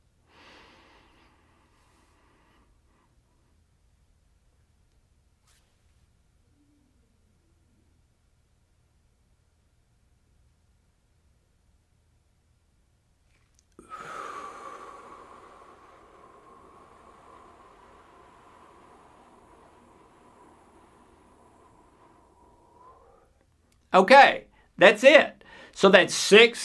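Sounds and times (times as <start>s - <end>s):
slow controlled breathing from an inhale-hold-exhale exercise: 0.2s - 3.6s, 13.3s - 23.9s, 25.4s - 25.8s
speech: 23.9s - 26.6s.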